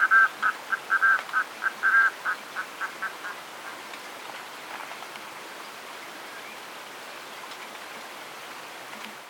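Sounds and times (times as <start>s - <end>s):
red-throated loon cackling: 0.0s - 3.8s.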